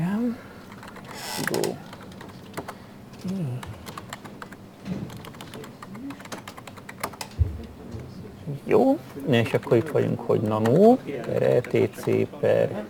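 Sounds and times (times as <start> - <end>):
typing on a computer keyboard: 0.7 - 7.4, 9.5 - 12.8
speech: 1.4 - 1.9, 8.8 - 12.8.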